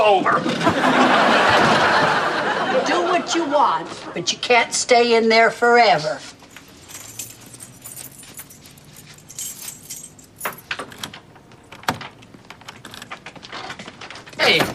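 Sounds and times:
speech: 0.1 - 1.2, 2.8 - 6.4, 14.5 - 14.7
laughter: 0.3 - 4.3
keys jangling at a stuck apartment door: 6.4 - 13.7.

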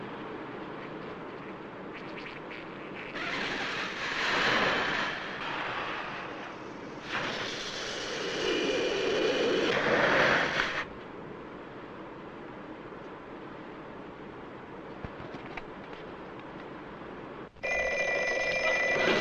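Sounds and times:
low steady hum: 0.0 - 19.1
telephone bell ringing: 17.6 - 19.1.

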